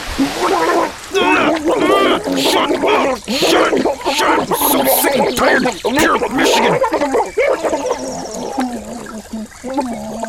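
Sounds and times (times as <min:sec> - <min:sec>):
voice imitating babbling brook: 0:00.0 - 0:10.2
speech: 0:00.2 - 0:08.4, 0:09.6 - 0:10.2
laughter: 0:00.5 - 0:08.1.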